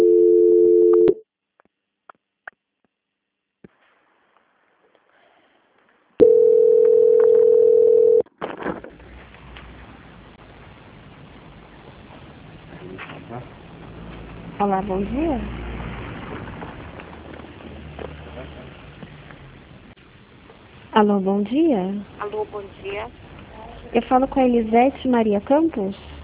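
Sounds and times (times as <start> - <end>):
telephone line tone during call transfer: 0.0 - 1.2, 6.2 - 8.3
speech: 14.8 - 15.6, 21.0 - 23.2, 23.9 - 26.1.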